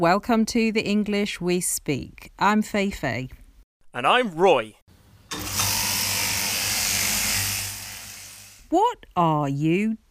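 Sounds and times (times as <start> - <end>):
speech: 0.0 - 5.6, 8.7 - 10.0
key-cutting machine grinding as keys are cut: 5.3 - 8.5.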